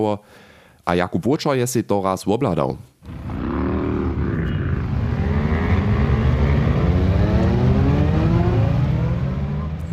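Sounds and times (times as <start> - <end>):
speech: 0.0 - 3.3
column of old, new, small and large motorcycles revving and pulling away from a church yard: 3.1 - 9.9.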